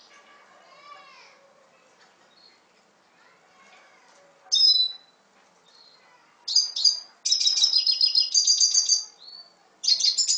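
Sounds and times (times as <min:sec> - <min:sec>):
Red siskin song with twittering trills and whistled notes: 0:04.5 - 0:10.3.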